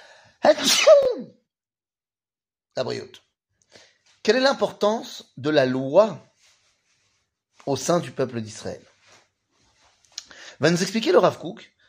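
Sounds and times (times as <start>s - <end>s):
person sneezing: 0.4s - 1.3s
speech: 0.4s - 1.4s, 2.8s - 6.3s, 7.6s - 8.9s, 10.6s - 11.7s.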